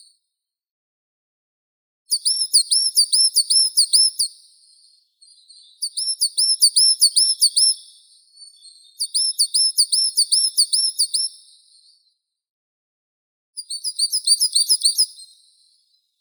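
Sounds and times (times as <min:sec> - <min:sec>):
coal tit Periparus ater calling: 0:02.2 - 0:04.3, 0:05.8 - 0:07.8, 0:08.5 - 0:11.3, 0:13.6 - 0:15.1.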